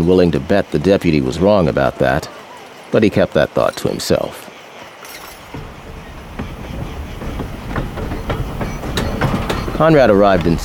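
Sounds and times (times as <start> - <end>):
speech: 0.0 - 4.5, 9.8 - 10.6
train rolling along rails: 4.9 - 10.6
train wheels clacking over track joints: 5.0 - 10.6.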